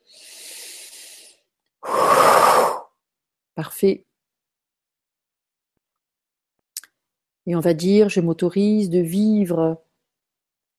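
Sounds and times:
slow breathing during a guided relaxation exercise: 0.0s - 3.0s
speech: 3.6s - 4.1s, 7.5s - 9.8s.

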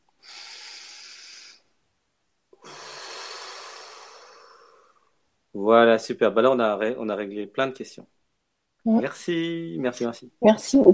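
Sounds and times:
slow deep breath inhale and exhale: 0.2s - 1.8s, 2.5s - 5.3s
speech: 5.5s - 8.2s, 8.8s - 10.9s.

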